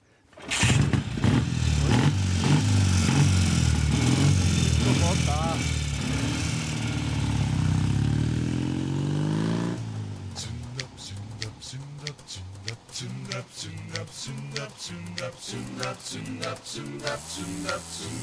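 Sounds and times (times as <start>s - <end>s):
motorcycle engine kickstarted and revving at full throttle: 0.4s - 11.7s.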